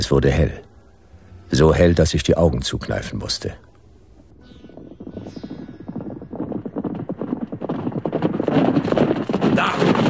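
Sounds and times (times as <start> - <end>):
speech: 0.0 - 0.7, 1.5 - 3.6
horse hooves clip-clopping: 5.9 - 10.0.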